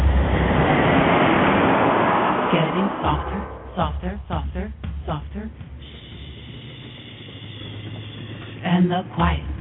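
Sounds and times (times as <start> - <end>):
loud airplane roaring overhead: 0.0 - 4.5
speech: 2.5 - 5.8, 8.6 - 9.5.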